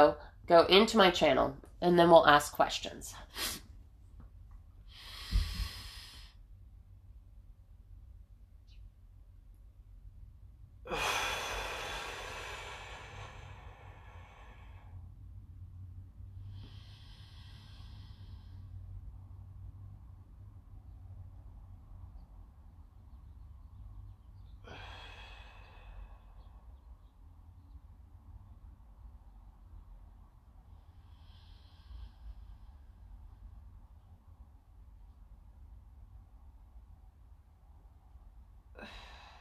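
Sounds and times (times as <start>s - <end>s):
speech: 0.0s - 3.6s, 10.9s - 11.2s
low steady hum: 0.0s - 39.4s
person breathing through a 4-7-8 breathing exercise: 4.8s - 6.5s, 10.8s - 15.2s, 16.4s - 18.9s, 24.6s - 26.8s, 30.7s - 33.0s, 38.7s - 39.4s.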